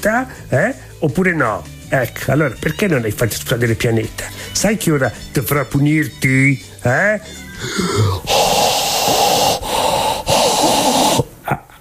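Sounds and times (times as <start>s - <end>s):
speech: 0.0s - 8.5s
heavy forceful rasping breathing: 4.2s - 5.3s, 6.6s - 11.3s.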